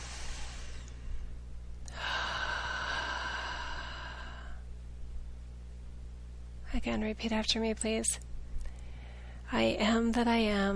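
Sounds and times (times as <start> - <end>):
deep inhaled breath: 0.0 - 1.2, 1.9 - 4.6
faint breathy hiss: 0.0 - 4.6
speech: 6.7 - 8.3, 9.5 - 10.7.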